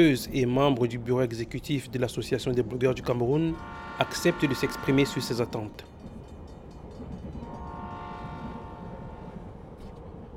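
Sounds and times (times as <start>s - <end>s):
speech: 0.0s - 5.9s
rolling rail cars rumbling at the railway station in Yaoundé, Cameroon: 0.0s - 10.3s
train horn blast: 3.5s - 5.8s, 7.4s - 9.8s.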